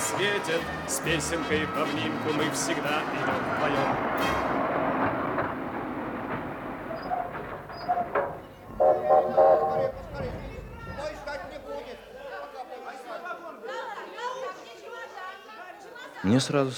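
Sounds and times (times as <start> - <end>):
train rumbling and clattering along the rails: 0.0 - 12.5
speech: 0.1 - 4.7, 16.3 - 16.7
crowd chattering on a station platform: 7.8 - 16.2.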